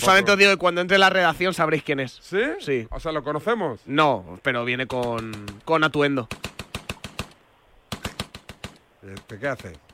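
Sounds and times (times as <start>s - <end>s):
speech: 0.0s - 6.6s, 9.0s - 9.8s
gunfire bursts: 4.9s - 9.8s.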